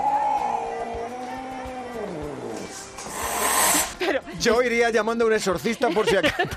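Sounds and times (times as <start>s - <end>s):
cat making an eerie frightening yowl: 0.0s - 3.9s
speech: 4.1s - 6.5s
laughter: 5.8s - 6.5s.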